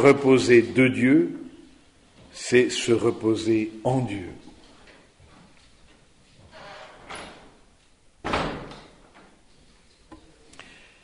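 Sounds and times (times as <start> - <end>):
speech: 0.0 - 1.4, 2.3 - 4.5
door bursting open with a sharp loud bang: 8.2 - 8.8.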